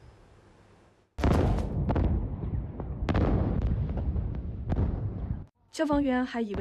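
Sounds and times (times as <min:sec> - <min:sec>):
series of loud booming explosions: 0:01.2 - 0:05.5
speech: 0:05.8 - 0:06.5.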